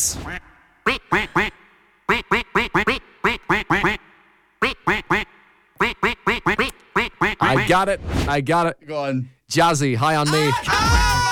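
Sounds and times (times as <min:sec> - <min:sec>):
speech: 0:00.1 - 0:01.6, 0:07.7 - 0:11.2
duck quacks arranged into a song melody: 0:00.3 - 0:07.7.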